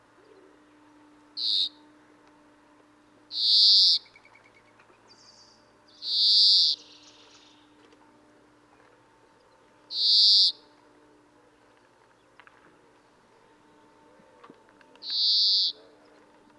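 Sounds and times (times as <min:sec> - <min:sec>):
steady faint humming tone: 0:00.0 - 0:16.5
speech: 0:01.4 - 0:01.7
European greenfinch Chloris chloris nasal buzzy wheezes: 0:01.4 - 0:01.8, 0:03.3 - 0:04.1, 0:05.9 - 0:07.5, 0:09.9 - 0:10.7, 0:15.0 - 0:15.8.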